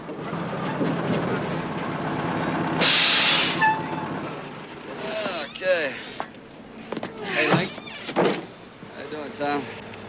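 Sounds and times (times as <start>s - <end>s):
truck engine rumbling while pulling into a yard: 0.0s - 10.0s
speech: 0.8s - 1.1s
truck air brakes hissing: 2.8s - 3.9s, 5.8s - 6.3s.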